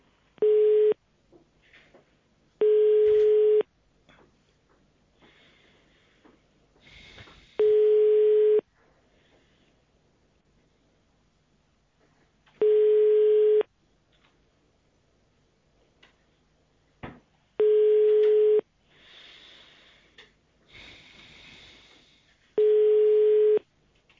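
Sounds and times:
telephone busy signal after a dropped call: 0.4 - 1.0, 2.6 - 3.7, 7.6 - 8.6, 12.6 - 13.7, 17.6 - 18.6, 22.6 - 23.6.

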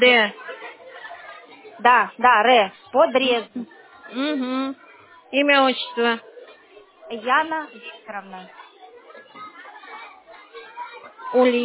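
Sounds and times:
speech: 0.0 - 0.5, 1.8 - 6.3, 7.1 - 8.6, 11.3 - 11.6
children shouting and chattering: 0.0 - 11.6.

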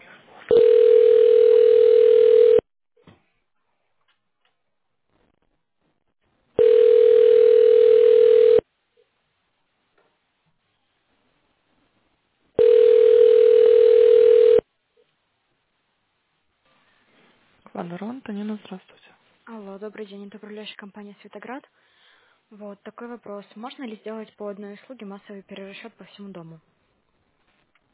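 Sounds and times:
telephone ringback tone during a call transfer: 0.5 - 2.6, 6.6 - 8.6, 12.6 - 14.6
speech: 20.1 - 21.8, 22.6 - 26.8.

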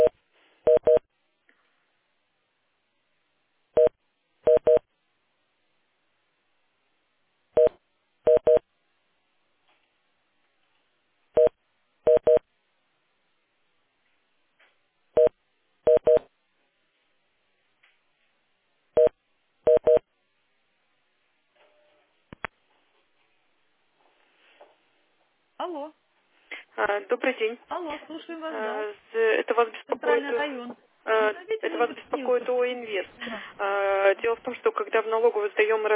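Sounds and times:
telephone keypad touch-tone dialing beeps: 0.7 - 1.0, 4.5 - 4.8, 8.3 - 8.6, 11.4 - 12.4, 15.9 - 16.2, 19.0 - 20.0
speech: 25.6 - 26.0, 26.8 - 35.9.

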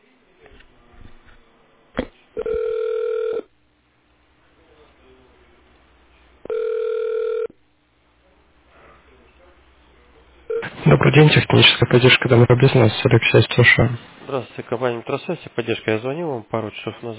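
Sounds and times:
faint noise: 0.0 - 17.1
telephone ringback tone as a call is transferred to a technician: 2.4 - 3.4, 6.5 - 7.5
speech: 11.0 - 17.1.

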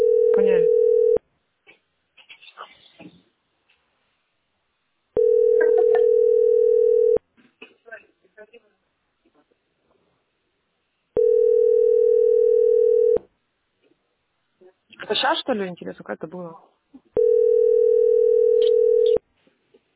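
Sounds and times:
telephone dial tone while placing a call: 0.0 - 1.2, 5.2 - 7.2, 11.2 - 13.2, 17.2 - 19.2
speech: 15.5 - 16.8.

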